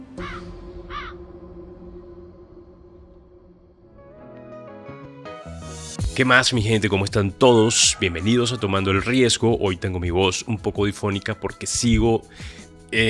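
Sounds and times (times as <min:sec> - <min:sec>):
sustained musical backdrop: 0:00.0 - 0:13.0
crow cawing: 0:00.2 - 0:01.2
speech: 0:06.2 - 0:13.0.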